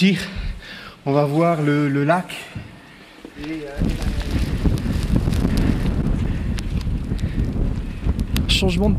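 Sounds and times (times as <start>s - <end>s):
speech: 0.0s - 0.4s, 1.0s - 2.7s, 3.3s - 4.2s, 8.6s - 8.9s
fierce windstorm roaring on a mountainside: 3.5s - 8.9s.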